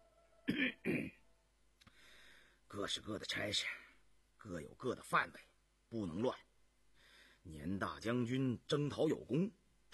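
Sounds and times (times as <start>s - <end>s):
speech: 0.5s - 0.9s, 2.7s - 3.8s, 4.4s - 6.5s, 7.4s - 9.9s
man coughing: 0.5s - 1.2s.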